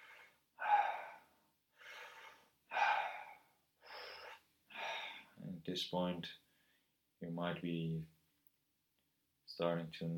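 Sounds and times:
deep rhythmic connected breathing with airy inhales and exhales: 0:00.0 - 0:05.4
speech: 0:05.6 - 0:06.4, 0:07.2 - 0:08.2, 0:09.6 - 0:10.1.

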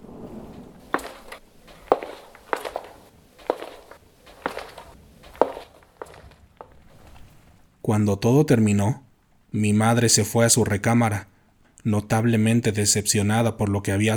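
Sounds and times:
slow heavy clawed creature footsteps on cobblestone street: 0:00.0 - 0:07.9
speech: 0:07.9 - 0:14.1.

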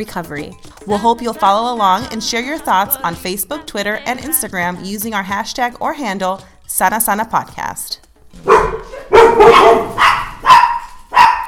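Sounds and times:
speech: 0:00.0 - 0:08.5
dog barking: 0:08.4 - 0:11.4.

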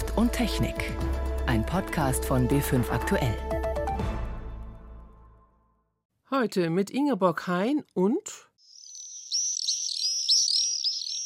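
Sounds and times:
speech: 0:00.2 - 0:03.5, 0:06.4 - 0:08.5
common swifts screaming calls: 0:08.6 - 0:11.2.

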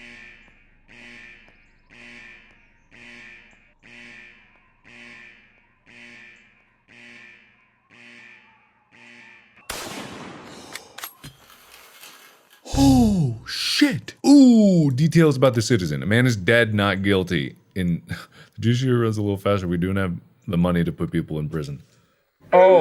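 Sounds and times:
video game gunfire: 0:09.6 - 0:11.6
speech: 0:13.8 - 0:21.9, 0:22.5 - 0:22.7.

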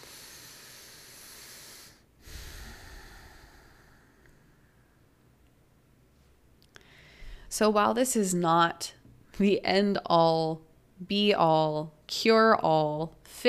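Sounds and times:
slow deep breath during an affirmation exercise: 0:00.0 - 0:05.2, 0:06.7 - 0:07.5
speech: 0:07.5 - 0:13.4.

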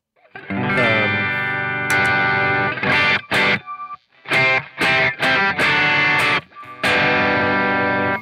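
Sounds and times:
heavily overdriven electric guitar through an overdrive pedal: 0:00.2 - 0:08.2.

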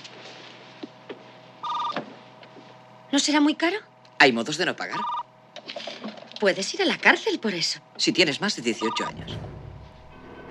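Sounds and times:
steady telephone line hum: 0:00.0 - 0:10.4
computer modem dialing telephone numbers: 0:01.6 - 0:02.0, 0:05.0 - 0:05.2, 0:08.8 - 0:09.2
speech: 0:03.1 - 0:05.2, 0:06.4 - 0:09.6.

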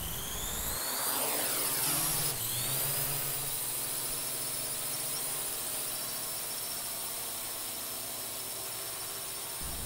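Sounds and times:
flying vehicle engine starting up: 0:00.0 - 0:02.8
flying vehicle's spinning rotors droning: 0:00.0 - 0:09.8.

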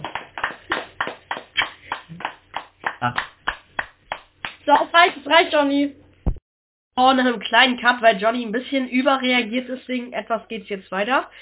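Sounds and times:
small group clapping hands: 0:00.0 - 0:05.2
speech: 0:03.0 - 0:03.3, 0:04.7 - 0:06.0, 0:07.0 - 0:11.4.

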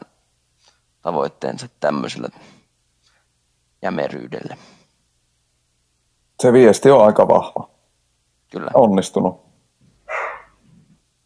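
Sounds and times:
speech: 0:01.0 - 0:02.6, 0:03.8 - 0:04.8, 0:06.4 - 0:07.8, 0:08.5 - 0:09.5
dog giving a sharp loud bark: 0:10.1 - 0:10.6.

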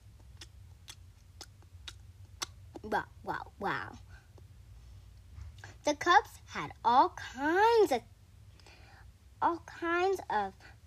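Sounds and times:
chewing food at dinner table: 0:00.0 - 0:02.9
small clicks of teeth and mouth: 0:00.0 - 0:02.9
low hum: 0:00.0 - 0:10.8
speech: 0:02.8 - 0:04.1, 0:05.8 - 0:08.1, 0:09.4 - 0:10.7.

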